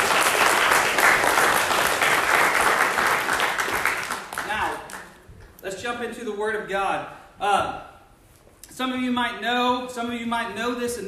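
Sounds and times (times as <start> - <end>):
audience crowd clapping: 0.0 - 5.2
speech: 6.0 - 7.8, 8.8 - 11.0.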